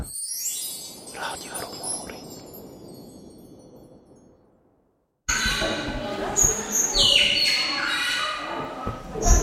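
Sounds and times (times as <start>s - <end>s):
chorus of birds chirping and calling: 5.3s - 9.4s.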